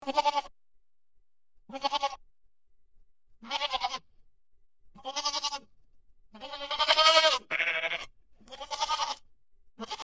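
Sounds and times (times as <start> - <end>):
goat bleating with wavering nasal bleats: 0.0 - 0.5, 1.7 - 2.2, 3.4 - 4.1, 5.0 - 5.7, 6.3 - 9.2, 9.8 - 10.0.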